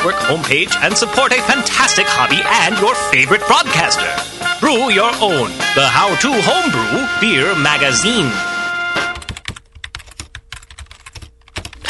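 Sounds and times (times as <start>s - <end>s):
speech: 0.0s - 8.5s
fast typing on a computer keyboard: 9.2s - 11.8s.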